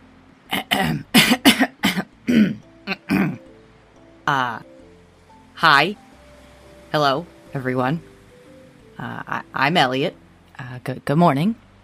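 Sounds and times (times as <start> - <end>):
man clearing his throat loudly and clumsily: 0.5 - 3.4
speech: 5.6 - 6.0, 6.9 - 8.1, 9.0 - 11.6.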